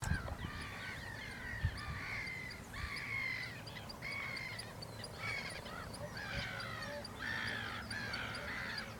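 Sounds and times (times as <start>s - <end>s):
two northern lapwings calling in Enger, Germany: 0.1s - 8.9s.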